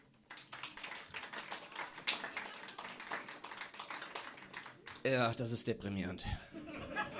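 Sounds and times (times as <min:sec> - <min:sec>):
sparse polite clapping from a small crowd: 0:00.0 - 0:05.1
speech: 0:05.0 - 0:07.1
laughter: 0:06.4 - 0:07.1.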